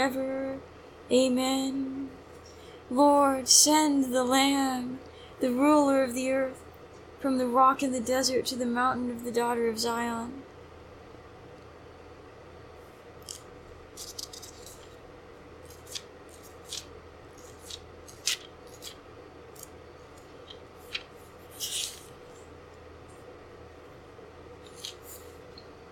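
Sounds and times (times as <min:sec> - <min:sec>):
speech: 0:00.0 - 0:02.1, 0:02.9 - 0:06.6, 0:07.2 - 0:10.4
quiet steady hum: 0:00.0 - 0:25.9
book page turning: 0:13.2 - 0:15.0, 0:15.6 - 0:19.0, 0:19.6 - 0:22.5, 0:24.6 - 0:25.4
paper ticks and rustles: 0:13.2 - 0:15.0, 0:15.6 - 0:22.5, 0:24.6 - 0:25.4.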